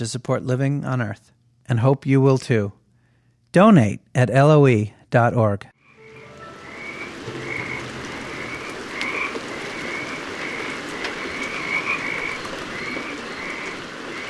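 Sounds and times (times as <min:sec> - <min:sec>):
speech: 0:00.0 - 0:02.8, 0:03.5 - 0:05.7
constant background hiss: 0:00.0 - 0:14.2
Pacific chorus frogs calling in chorus on Santa Cruz Island, California: 0:05.8 - 0:14.2.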